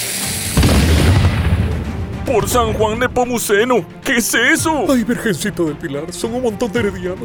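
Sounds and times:
wooden cannon firing in a radio drama: 0.6 - 3.4
speech: 2.3 - 7.2.

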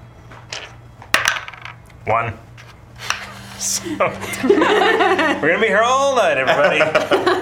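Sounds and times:
small six-sided die tumbling across a hard tabletop: 0.5 - 1.8
speech: 2.0 - 2.5, 3.6 - 7.4
laughter: 3.3 - 7.4.

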